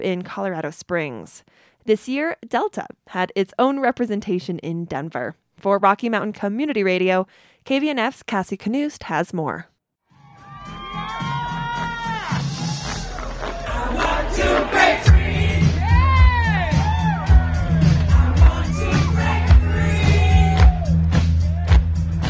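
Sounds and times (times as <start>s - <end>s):
speech: 0.0s - 9.7s
large outdoor crowd cheering and whooping at a pride parade: 10.2s - 22.0s.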